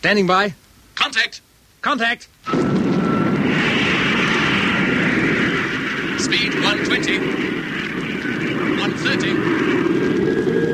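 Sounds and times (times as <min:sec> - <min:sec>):
speech: 0:00.0 - 0:02.7, 0:06.2 - 0:07.9, 0:08.8 - 0:09.8
aircraft engine roar as motor starts up: 0:02.5 - 0:10.7.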